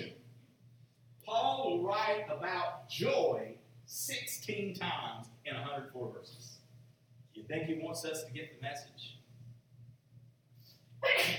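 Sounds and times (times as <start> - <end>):
quiet room hum: 0.0 - 11.3
speech: 1.3 - 6.5, 7.4 - 9.2
person sneezing: 11.0 - 11.3.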